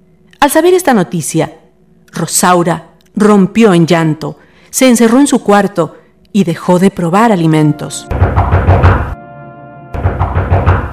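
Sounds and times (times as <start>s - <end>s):
speech: 0.4s - 8.9s
knuckles rapping on a bedroom door: 8.1s - 9.2s, 10.0s - 10.9s.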